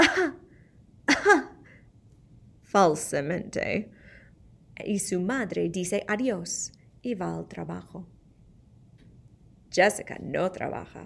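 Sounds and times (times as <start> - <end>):
girl fake coughing: 0.0 - 0.5, 1.1 - 1.7
speech: 1.2 - 1.5, 2.7 - 4.0, 4.8 - 8.1, 9.7 - 11.0.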